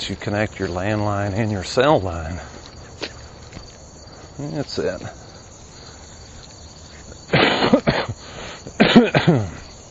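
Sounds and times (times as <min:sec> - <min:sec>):
faint steady high hiss: 0:00.0 - 0:09.9
speech: 0:00.1 - 0:02.6, 0:04.4 - 0:05.2, 0:08.1 - 0:09.6
raspy hacking coughing: 0:07.3 - 0:09.7.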